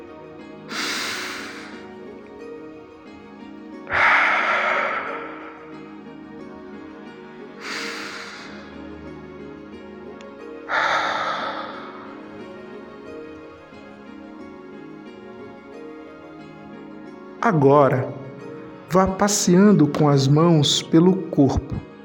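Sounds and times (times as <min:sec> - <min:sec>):
slow deep conscious breathing in and out: 0:00.7 - 0:09.2, 0:10.2 - 0:14.3
speech: 0:17.5 - 0:18.2, 0:18.9 - 0:21.9.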